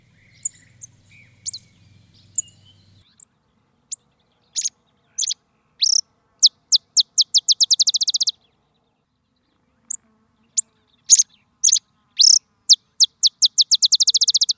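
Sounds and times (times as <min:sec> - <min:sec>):
Botteri's sparrow: 0:00.0 - 0:14.5.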